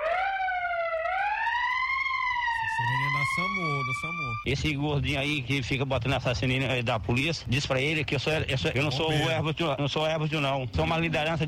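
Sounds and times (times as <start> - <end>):
police siren wailing: 0.0 - 4.5
speech: 2.8 - 11.4.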